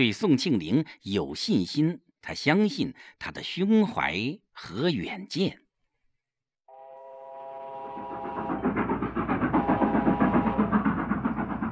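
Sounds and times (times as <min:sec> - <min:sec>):
speech: 0:00.0 - 0:05.6
train horn-like tone: 0:06.7 - 0:10.8
northbound train wheels clattering on tracks: 0:07.8 - 0:11.6.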